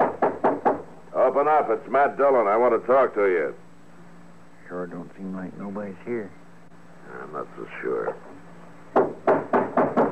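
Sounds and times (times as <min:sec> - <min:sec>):
knocking on a wooden door: 0:00.0 - 0:00.9, 0:08.9 - 0:10.0
speech: 0:01.3 - 0:03.6, 0:04.7 - 0:06.4, 0:07.1 - 0:08.3.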